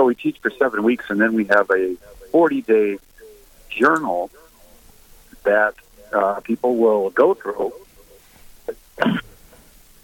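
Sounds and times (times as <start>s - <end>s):
speech: 0.0s - 3.1s, 3.7s - 4.4s, 5.4s - 7.8s, 8.7s - 9.3s
person coughing harshly: 9.0s - 9.4s.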